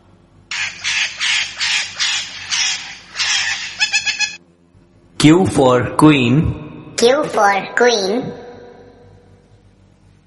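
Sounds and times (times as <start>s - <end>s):
parrot squawking: 0.5s - 4.4s
speech: 5.2s - 8.4s.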